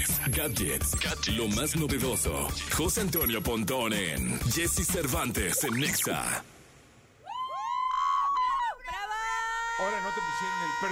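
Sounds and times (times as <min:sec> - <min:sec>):
speech: 0:00.4 - 0:06.6, 0:09.8 - 0:10.9
recorded scream played as show intro: 0:07.2 - 0:10.9.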